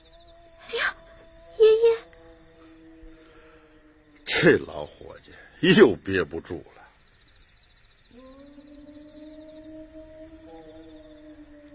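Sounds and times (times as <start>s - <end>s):
person imitating a wolf howl: 0.0s - 4.6s, 8.1s - 11.7s
low hiss: 0.0s - 11.7s
speech: 4.4s - 6.8s.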